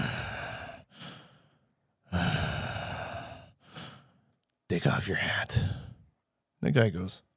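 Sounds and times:
person imitating heavy breathing: 0.0s - 1.3s, 2.1s - 4.0s
speech: 4.7s - 5.8s, 6.6s - 7.3s.

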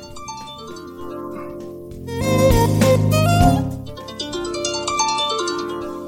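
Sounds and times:
iPhone harp ringtone playing: 0.0s - 6.0s.

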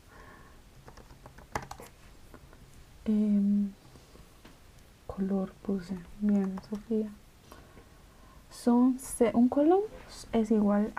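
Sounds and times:
low hum: 0.0s - 10.9s
computer keyboard typing: 0.8s - 1.9s, 5.9s - 7.1s
speech: 3.1s - 3.3s, 5.2s - 7.2s, 8.6s - 10.9s.

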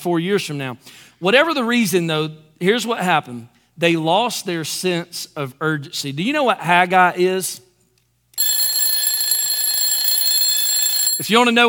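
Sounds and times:
speech: 0.0s - 7.7s, 11.2s - 11.6s
alarm clock ringing: 8.4s - 11.6s.

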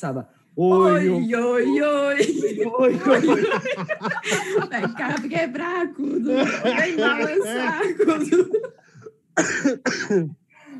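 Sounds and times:
speech: 0.0s - 10.4s
laughter: 1.8s - 9.0s
harsh person coughing: 6.2s - 7.0s, 9.4s - 10.4s.

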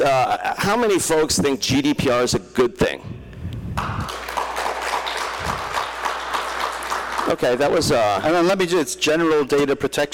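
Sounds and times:
speech: 0.0s - 3.1s, 7.3s - 10.1s
crowd clapping in a large room: 3.8s - 8.2s.

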